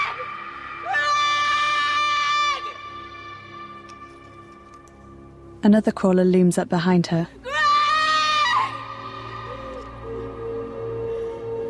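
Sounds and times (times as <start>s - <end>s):
woman screaming into a cavern: 0.0s - 3.0s, 7.4s - 9.7s
speech: 5.6s - 7.4s.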